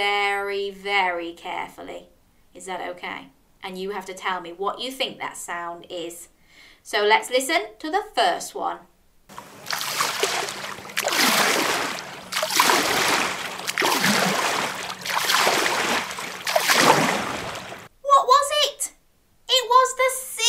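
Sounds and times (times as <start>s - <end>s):
speech: 0.0s - 9.5s
sea waves swishing along the seashore: 9.3s - 17.9s
child talking: 18.0s - 20.4s.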